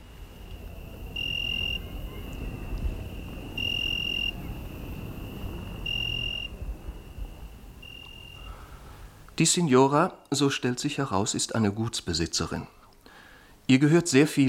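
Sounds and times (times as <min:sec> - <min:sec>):
low rumble: 0:00.0 - 0:09.3
crickets chirping through an open garden window on a hot evening in Meolo, Italy: 0:00.0 - 0:09.4
speech: 0:09.4 - 0:12.8, 0:13.7 - 0:14.4.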